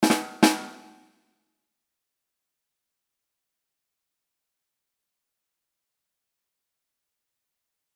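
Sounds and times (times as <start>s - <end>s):
rimshot drum sting: 0.0s - 1.0s.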